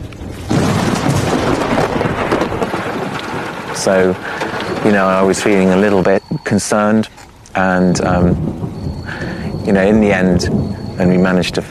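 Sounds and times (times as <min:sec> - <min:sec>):
thunder crack and rumble from a lightning storm: 0:00.0 - 0:11.6
steady hiss: 0:02.8 - 0:11.6
speech: 0:03.8 - 0:08.6, 0:09.6 - 0:11.6.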